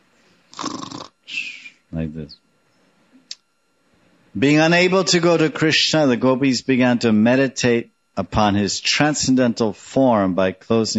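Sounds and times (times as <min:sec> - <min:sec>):
person imitating a snore: 0:00.5 - 0:01.5
speech: 0:01.9 - 0:02.5, 0:04.4 - 0:10.9.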